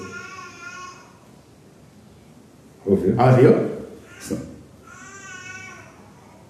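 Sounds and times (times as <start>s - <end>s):
two babies wailing with high sustained cries: 0.0s - 1.3s, 4.0s - 6.4s
speech: 2.8s - 4.5s
adult speaking: 2.8s - 4.6s.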